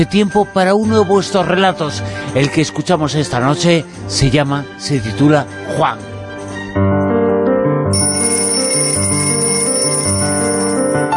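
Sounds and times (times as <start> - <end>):
speech: 0.0 - 6.2, 6.8 - 7.1
alarm clock bell ringing: 7.9 - 11.1.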